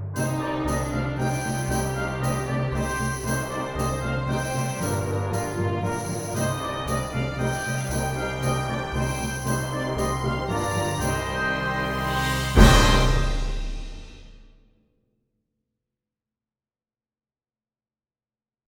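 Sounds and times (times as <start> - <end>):
dance music in Dorian mode: 0.2 - 14.2.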